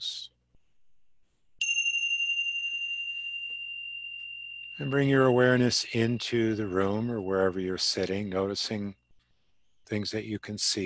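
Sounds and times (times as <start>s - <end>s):
bright bell strike: 1.6s - 9.2s
speech: 4.8s - 9.0s, 9.9s - 10.8s.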